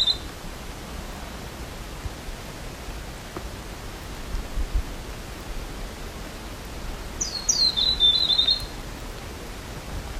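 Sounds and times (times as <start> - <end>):
small bird calling in jungle of Fiordland National Park, New Zealand: 0.0 - 0.3, 7.2 - 8.8
outdoor hiss: 0.0 - 10.1.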